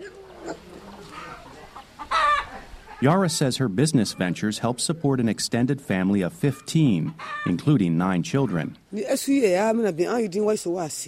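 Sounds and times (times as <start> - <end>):
free-roaming chickens clucking outside a tiny mud brick home: 0.0 - 5.4, 6.2 - 8.8
speech: 3.0 - 11.0.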